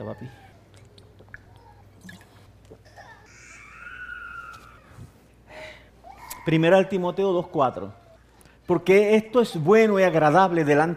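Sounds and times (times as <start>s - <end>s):
speech: 0.0s - 0.5s, 6.4s - 8.0s, 8.7s - 10.9s
low steady room hum: 0.0s - 10.9s
person sipping and swallowing water: 0.7s - 2.9s.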